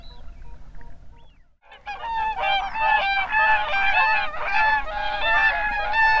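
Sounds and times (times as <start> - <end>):
whooper swan loud far-carrying trumpet-like calls: 1.7 - 6.1.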